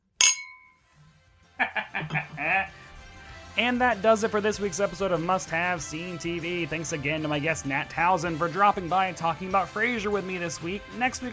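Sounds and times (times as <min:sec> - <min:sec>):
glasses clinking in a toast: 0:00.0 - 0:00.8
laughter: 0:01.6 - 0:02.8
speech: 0:01.6 - 0:02.8, 0:03.6 - 0:11.3.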